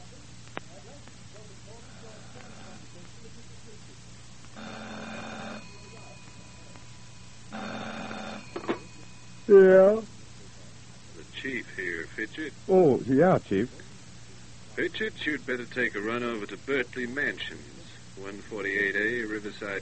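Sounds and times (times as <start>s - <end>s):
faint murmur: 0.0s - 19.8s
old-fashioned telephone ringing: 2.2s - 2.9s, 4.5s - 10.2s
speech: 9.5s - 10.1s, 12.1s - 13.8s, 14.8s - 19.8s.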